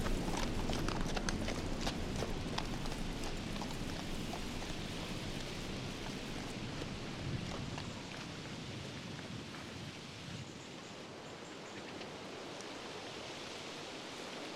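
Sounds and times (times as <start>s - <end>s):
horses led by handlers running past along a path: 0.0s - 10.0s
constant rain-like hiss: 0.0s - 14.5s.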